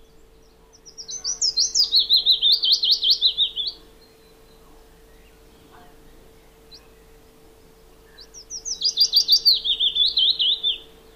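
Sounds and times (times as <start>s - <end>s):
faint steady hum: 0.0s - 11.1s
willow warbler song: 0.0s - 11.1s.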